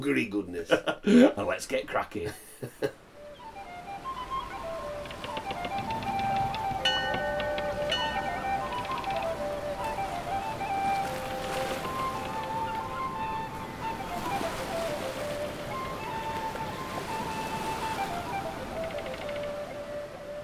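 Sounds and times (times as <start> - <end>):
speech: 0.0 - 3.0
outdoor wind: 0.0 - 20.4
waves and surf washing around a boat: 0.1 - 20.4
boat motor humming by the sea: 3.0 - 20.4
gull calls: 3.1 - 20.4.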